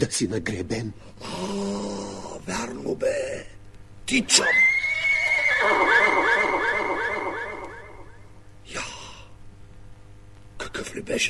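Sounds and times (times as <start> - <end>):
speech: 0.0 - 4.7, 10.9 - 11.2
white horse neighing: 4.4 - 8.2.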